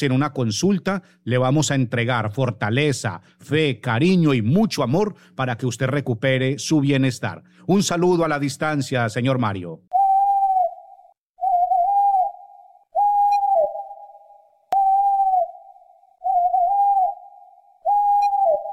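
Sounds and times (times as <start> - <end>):
speech: 0.0 - 10.0
bird call, drawn-out mournful whistle: 9.9 - 18.7.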